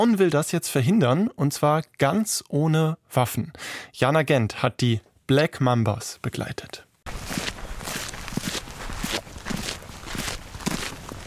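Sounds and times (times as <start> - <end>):
speech: 0.0 - 6.9
footsteps of women on a morning foot patrol near a South African national park: 7.1 - 11.2.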